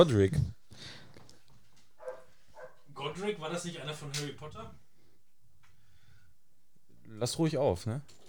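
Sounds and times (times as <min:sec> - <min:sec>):
speech: 0:00.0 - 0:01.0, 0:03.0 - 0:04.8, 0:07.1 - 0:08.2
dog barking: 0:02.0 - 0:03.0.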